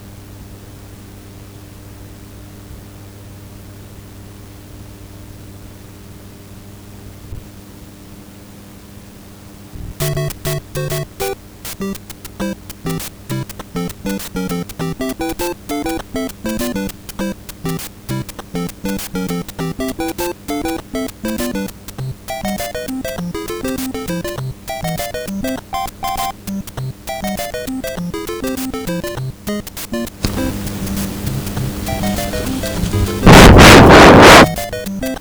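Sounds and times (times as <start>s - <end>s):
Famicom buzz: 10.0s - 35.1s.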